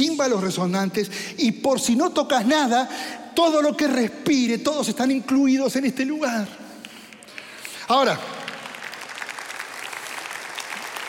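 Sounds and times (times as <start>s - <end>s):
speech: 0.0s - 6.6s, 7.9s - 8.3s
audience applause at a religious sermon: 7.3s - 11.0s.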